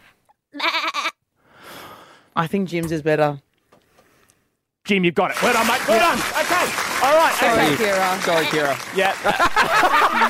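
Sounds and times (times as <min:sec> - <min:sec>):
person imitating a goat bleat: 0:00.5 - 0:01.2
speech: 0:02.4 - 0:03.5, 0:04.9 - 0:10.2
laughter: 0:05.4 - 0:10.2.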